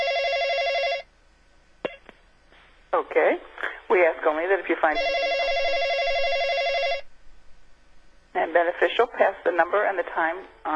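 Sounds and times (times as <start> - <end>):
electronic telephone ring before voicemail picks up: 0.0 - 1.1, 4.9 - 7.1
faint noise: 0.0 - 10.7
speech: 3.2 - 5.4, 8.5 - 10.7.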